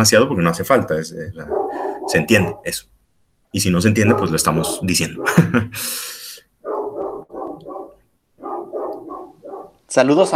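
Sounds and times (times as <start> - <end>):
speech: 0.0 - 2.9, 3.5 - 6.2, 9.9 - 10.3
female dog barking at home: 0.7 - 2.8, 4.0 - 5.6, 6.6 - 9.9
laughter: 5.1 - 6.0.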